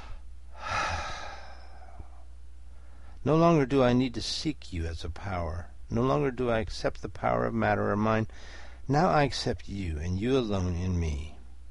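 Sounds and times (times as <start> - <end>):
man breathing in: 0.0 - 3.2, 8.3 - 8.8
speech: 3.2 - 11.3.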